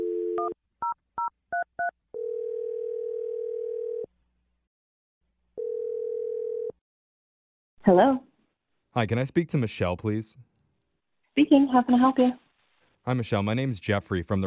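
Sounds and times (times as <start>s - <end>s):
short telephone dial tone: 0.0s - 0.6s, 1.6s - 4.1s, 5.6s - 6.8s
speech: 7.9s - 8.3s, 9.0s - 10.5s, 11.4s - 12.4s, 13.0s - 14.4s.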